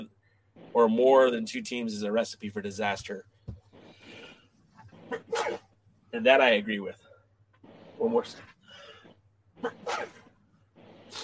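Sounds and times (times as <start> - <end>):
speech: 0.7 - 3.3, 5.1 - 7.0, 8.0 - 8.5, 9.6 - 10.2
single sharp sneeze: 5.1 - 5.7, 9.6 - 10.3.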